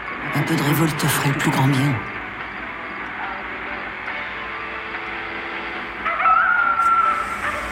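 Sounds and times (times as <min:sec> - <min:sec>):
speech: 0:00.4 - 0:02.1
coyote howling at night: 0:06.0 - 0:07.6.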